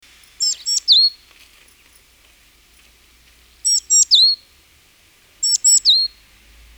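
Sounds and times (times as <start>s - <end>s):
great tit Parus major calls: 0.1s - 4.6s, 5.4s - 6.3s.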